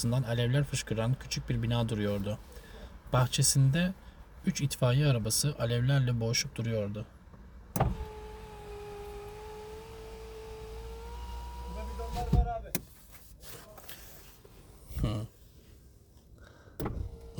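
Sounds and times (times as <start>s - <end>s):
speech: 0.0s - 7.2s
car power windows closing with electric motor whine: 7.7s - 12.6s, 16.8s - 17.3s.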